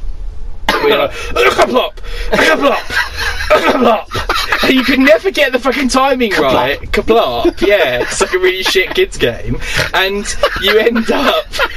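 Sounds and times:
person coughing deliberately: 0.7s - 1.7s
speech: 0.9s - 11.7s
stifled laughter: 2.3s - 5.1s, 7.4s - 11.7s.

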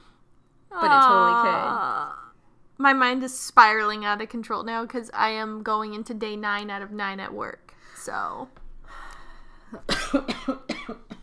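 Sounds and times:
hum: 0.0s - 11.2s
speech: 2.8s - 8.6s, 9.7s - 11.2s
person coughing: 9.8s - 11.2s.

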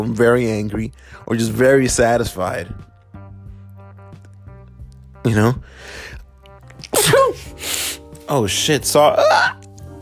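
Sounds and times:
speech: 0.0s - 2.9s, 5.2s - 6.2s, 8.3s - 9.6s
person sneezing: 6.8s - 8.0s.

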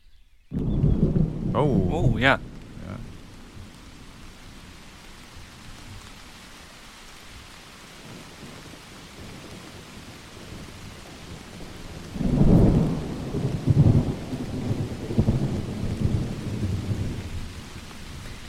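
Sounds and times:
deep rolling thunder: 0.5s - 4.9s, 10.4s - 17.6s
steady rain hissing: 0.6s - 18.4s
speech: 1.6s - 2.5s.

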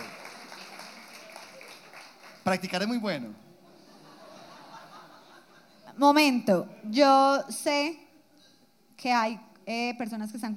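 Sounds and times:
crowd applauding: 0.0s - 3.3s
speech: 2.4s - 3.5s, 6.0s - 8.0s, 9.0s - 10.5s
laughter: 3.5s - 5.9s.

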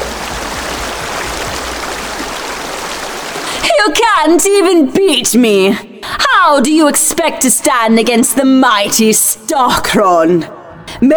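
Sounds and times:
flowing river water rushing: 0.0s - 3.8s
speech: 3.7s - 11.1s.

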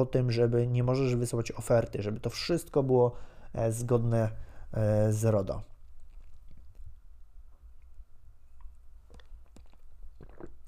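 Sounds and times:
speech: 0.0s - 5.7s
low steady hum: 0.0s - 10.6s
faint slurping sips of coffee: 8.6s - 10.6s.

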